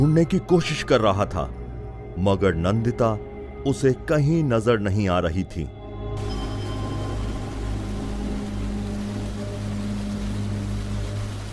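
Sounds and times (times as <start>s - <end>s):
speech: 0.0s - 1.6s, 2.2s - 6.3s
heavy rain: 6.2s - 11.5s.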